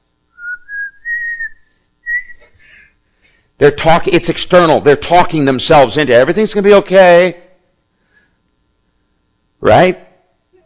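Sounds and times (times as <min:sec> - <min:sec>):
person whistling a short rising tune: 0:00.3 - 0:02.6
speech: 0:03.6 - 0:07.4, 0:09.6 - 0:10.0.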